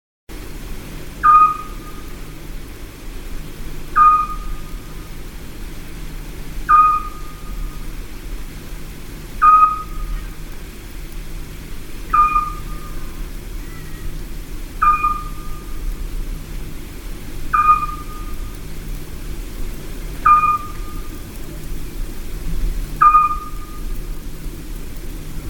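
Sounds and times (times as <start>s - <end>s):
Eurasian scops owl giving a short clear whistled note: 1.2s - 2.0s, 4.0s - 4.6s, 6.7s - 7.5s, 9.4s - 10.2s, 12.1s - 14.1s, 14.8s - 15.7s, 17.5s - 18.4s, 20.2s - 21.1s, 23.0s - 23.9s.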